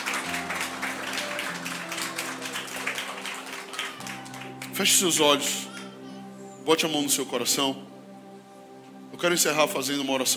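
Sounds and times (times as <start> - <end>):
church audience applauding: 0.0 - 5.1
speech: 4.8 - 5.7, 6.7 - 8.0, 9.2 - 10.3.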